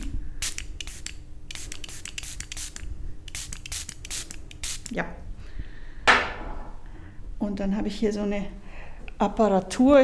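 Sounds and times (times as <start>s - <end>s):
spray bottle misting water onto dried plants: 0.0s - 4.9s
low hum: 0.0s - 10.0s
speech: 4.9s - 5.2s, 7.5s - 10.0s.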